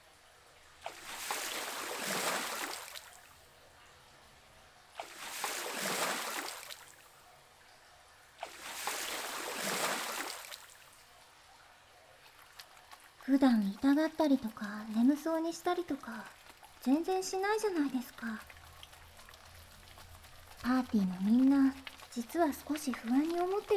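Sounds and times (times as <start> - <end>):
hot water poured over hair: 0.8 - 3.4, 5.0 - 7.1, 8.4 - 11.0, 12.2 - 23.7
speech: 13.3 - 18.5, 20.7 - 23.7.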